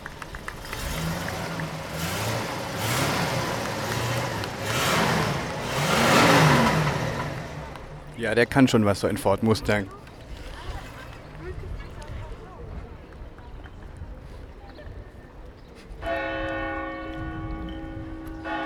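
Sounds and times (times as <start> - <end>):
busy outdoor noise with voices: 0.0 - 18.6
speech: 8.2 - 10.0
church bells ringing: 16.1 - 18.6.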